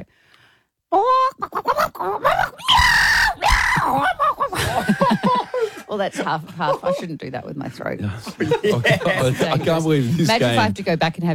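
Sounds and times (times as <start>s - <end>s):
speech: 0.9s - 2.8s, 5.9s - 11.3s
person vocally imitating a chicken squawking and clucking: 0.9s - 4.6s
laughter: 3.7s - 7.2s, 8.2s - 10.3s.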